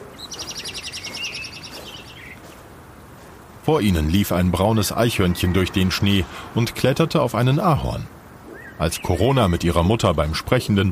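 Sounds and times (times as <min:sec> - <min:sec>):
blackbird singing in the distance: 0:00.0 - 0:03.2, 0:04.6 - 0:07.2, 0:08.3 - 0:10.0
soft steady hiss: 0:00.0 - 0:10.8
speech: 0:03.7 - 0:08.2, 0:08.8 - 0:10.8.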